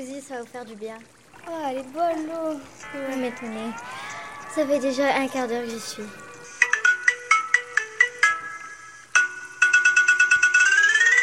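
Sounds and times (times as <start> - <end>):
speech: 0.0 - 6.3
telephone ringing with a bright electronic ringtone: 2.8 - 11.2.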